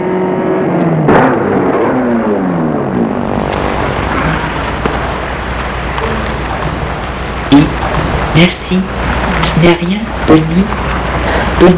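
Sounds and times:
car engine slowing and pulling to a stop: 0.2 - 11.6
car engine idling: 2.8 - 11.6
speech: 8.4 - 10.8, 11.6 - 11.7.

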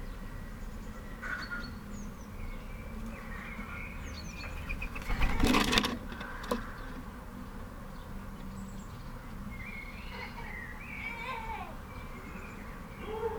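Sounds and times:
birds chirping and chattering at a bird feeder: 0.0 - 13.3
loud rustling scrape: 4.8 - 6.4.

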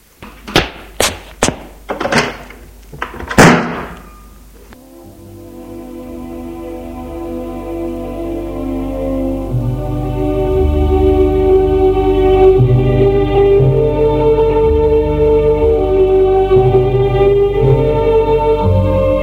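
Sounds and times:
heavy wooden thuds: 0.3 - 4.0
door slamming shut: 0.5 - 4.1
low sustained musical drone: 4.7 - 19.2.

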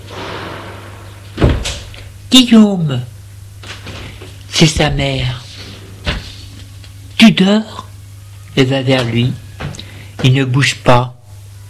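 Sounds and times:
low hum: 0.0 - 11.6
door opening with a thud and rattle: 1.4 - 1.9
speech: 2.3 - 3.1, 4.6 - 5.4, 7.2 - 7.8, 8.6 - 9.4, 10.2 - 11.2.

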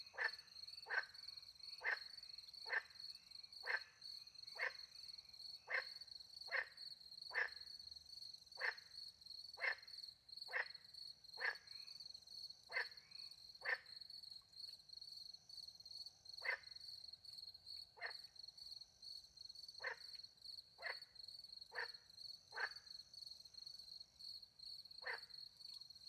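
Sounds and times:
continuous shrill cricket chorus in the French countryside at night: 0.0 - 26.0
frog croaking by a little pond in the French countryside at night: 0.1 - 1.2, 1.8 - 5.0, 5.7 - 7.8, 8.6 - 8.9, 10.5 - 10.8, 11.4 - 11.8, 12.7 - 13.9, 16.4 - 16.8, 18.0 - 18.3, 19.8 - 20.2, 20.8 - 21.1, 21.7 - 22.9, 25.0 - 25.3.

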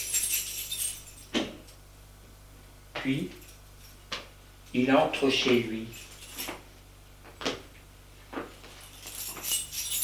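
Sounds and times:
keys jingling: 0.0 - 1.8, 3.1 - 4.1, 5.8 - 6.7, 8.7 - 10.0
speech: 3.0 - 3.4, 4.7 - 6.5.

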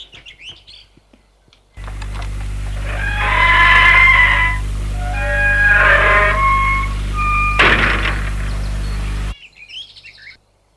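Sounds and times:
front door latch releasing with an electric buzz: 1.8 - 9.4.

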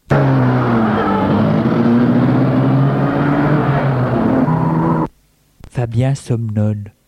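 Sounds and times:
car engine droning as the car drives along: 0.0 - 5.1
speech: 5.9 - 7.0.

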